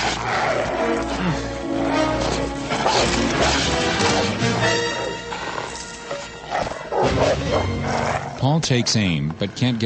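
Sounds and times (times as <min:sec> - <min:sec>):
guard dog snarling and growling: 0:00.0 - 0:08.4
loud dense background: 0:00.2 - 0:09.8
guard dog's metal chain clanking and rattling: 0:05.4 - 0:06.5
speech: 0:08.5 - 0:09.8.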